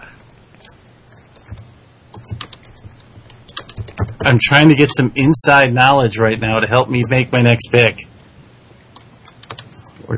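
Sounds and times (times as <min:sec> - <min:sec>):
faint low hum: 0:00.0 - 0:10.1
typing on a computer keyboard: 0:00.6 - 0:05.0, 0:09.0 - 0:09.9
speech: 0:04.2 - 0:08.1.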